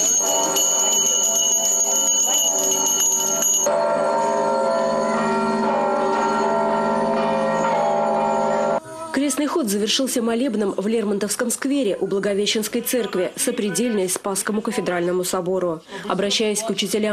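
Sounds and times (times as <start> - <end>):
bells of a church under construction in Penza Russia ringing: 0.0 - 8.8
many small handbells jingling during an Orthodox religious procession: 0.0 - 8.8
speech: 9.6 - 17.1.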